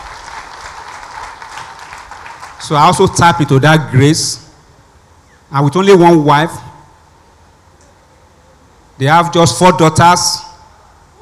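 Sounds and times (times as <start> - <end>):
crowd applauding: 0.0 - 2.8
speech: 2.6 - 4.4, 5.5 - 6.7, 9.0 - 10.4.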